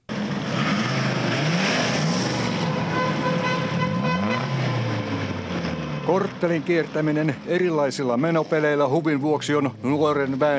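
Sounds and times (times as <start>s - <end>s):
car revving through a loud tuned exhaust: 0.0s - 10.5s
speech: 6.1s - 10.5s.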